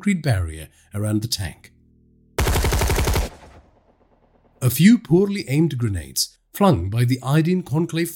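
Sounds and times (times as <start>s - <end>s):
speech: 0.0s - 1.7s, 4.6s - 8.1s
automatic gunfire from a barricade: 2.4s - 3.7s.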